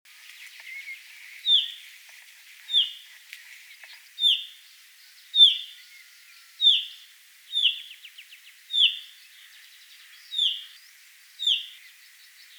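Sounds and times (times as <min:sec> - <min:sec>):
faint bird twittering: 0:00.2 - 0:01.9, 0:02.7 - 0:12.5
common chaffinch Fringilla coelebs calling: 0:00.4 - 0:01.9, 0:02.7 - 0:03.0, 0:03.8 - 0:04.6, 0:05.4 - 0:10.8, 0:11.4 - 0:12.5.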